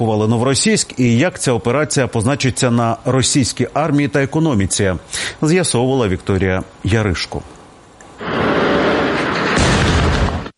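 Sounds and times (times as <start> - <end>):
speech: 0.0 - 7.6
loud explosions rumbling: 8.2 - 10.5.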